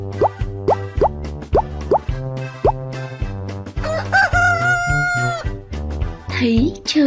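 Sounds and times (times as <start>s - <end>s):
quick plopping sounds: 0.1s - 2.8s
rooster crowing: 3.8s - 5.5s
speech: 6.4s - 7.0s.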